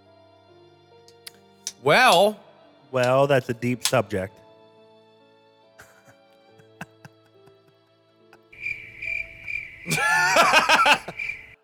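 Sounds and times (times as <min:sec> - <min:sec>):
speech: 0:01.8 - 0:04.4
laughter: 0:05.8 - 0:07.8, 0:09.9 - 0:11.3
crickets chirping: 0:08.6 - 0:11.6.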